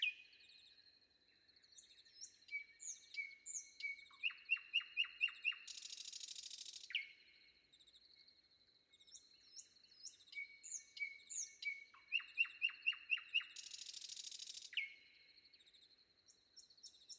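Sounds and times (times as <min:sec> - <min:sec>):
Common nightingale song before dawn: 0:00.0 - 0:17.1.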